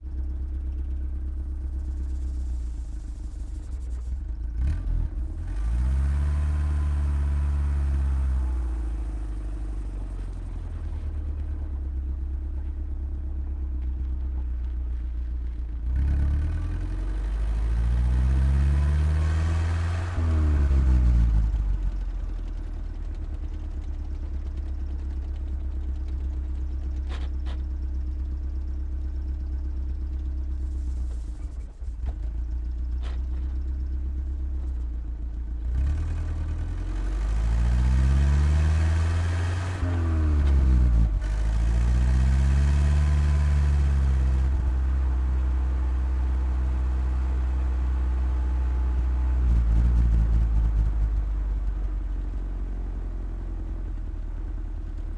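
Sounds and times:
GAZ-69 exhaust heard onboard during medium drive and stop: 0:00.0 - 0:55.1.

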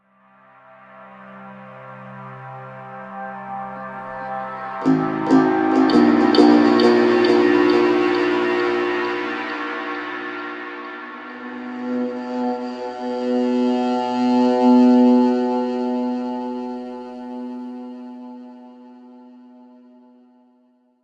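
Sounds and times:
dark sorrowful Middle Eastern music: 0:03.9 - 0:19.6.

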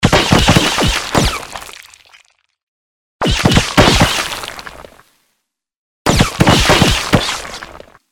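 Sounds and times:
gunshots: 0:00.0 - 0:01.6, 0:03.2 - 0:04.7, 0:06.1 - 0:07.9.

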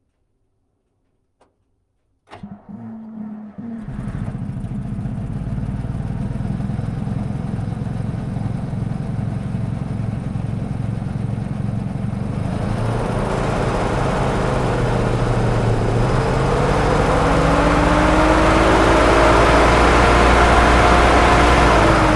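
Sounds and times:
ZiL-131 truck engine starting, driving, reversing and stopping, recorded onboard: 0:02.3 - 0:22.1.

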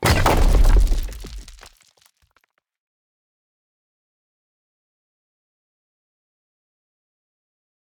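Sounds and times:
small landing impact: 0:00.0 - 0:01.8.

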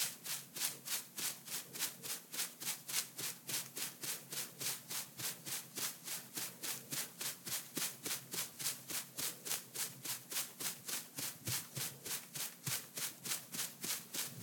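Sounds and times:
fast hair scratching by hand: 0:00.0 - 0:14.4.

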